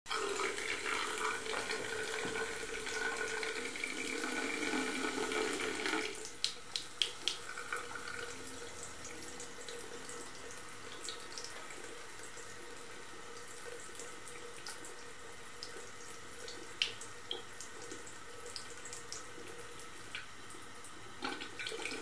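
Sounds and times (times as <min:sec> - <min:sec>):
water flowing into a porcelain sink: 0:00.1 - 0:21.9.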